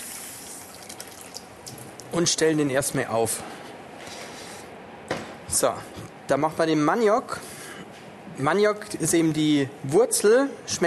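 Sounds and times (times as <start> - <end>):
water running from a tap into a small pot: 0.0 - 1.8
speech: 2.1 - 3.6, 5.6 - 7.5, 8.4 - 10.8.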